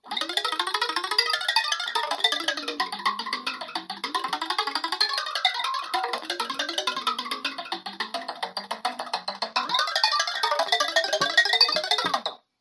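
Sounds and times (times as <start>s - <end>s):
percussive midi sounds: 0.0s - 12.5s.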